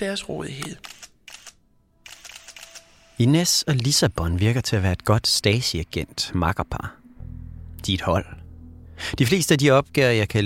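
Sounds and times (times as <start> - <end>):
speech: 0.0 - 1.0, 3.2 - 7.0, 7.8 - 8.4, 9.0 - 10.4
telephoto camera shutter clicking: 0.8 - 3.2.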